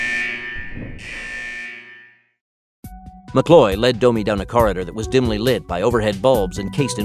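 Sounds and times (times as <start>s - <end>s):
electronic alarm blaring with a harsh buzzing tone: 0.0s - 2.3s
speech: 3.3s - 7.0s.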